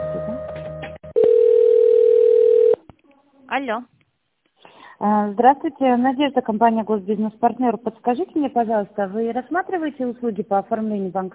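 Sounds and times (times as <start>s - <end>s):
steady telephone tone while a call is transferred: 1.2s - 2.8s
speech: 3.5s - 4.0s, 5.0s - 11.3s.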